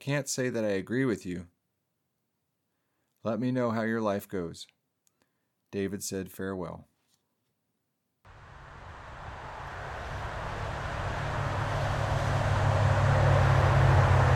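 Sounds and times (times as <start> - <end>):
speech: 0.0 - 1.6, 3.2 - 4.8, 5.7 - 6.9
road traffic rushing past with deep engine rumble: 8.3 - 14.3.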